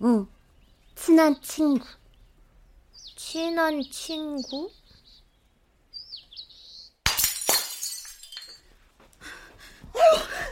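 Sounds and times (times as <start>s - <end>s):
speech: 0.0s - 0.3s, 1.1s - 2.0s, 3.2s - 4.8s, 10.0s - 10.3s
drinking cup smashing: 7.0s - 8.6s
scattered shards tinkling: 7.1s - 8.7s.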